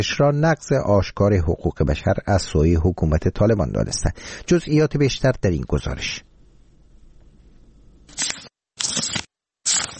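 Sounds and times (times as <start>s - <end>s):
speech: 0.0s - 6.3s, 9.0s - 9.2s
faint low hum: 0.1s - 8.1s
book pages being turned by a schoolgirl in Afghanistan: 8.1s - 9.9s.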